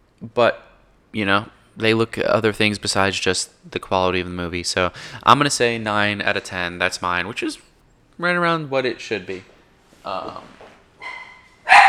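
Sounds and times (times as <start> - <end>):
speech: 0.2 - 10.6
dogs barking at an arriving garbage collector: 11.0 - 11.8.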